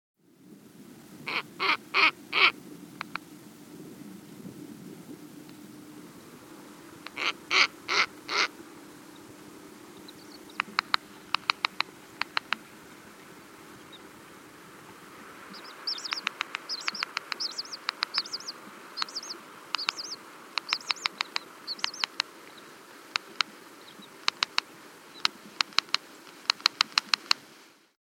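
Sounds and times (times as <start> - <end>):
female Snowy Owl bark calls: 1.2 - 3.2, 6.9 - 27.3
female Snowy Owl bill snap: 1.3 - 3.3, 7.0 - 13.1, 15.5 - 27.5.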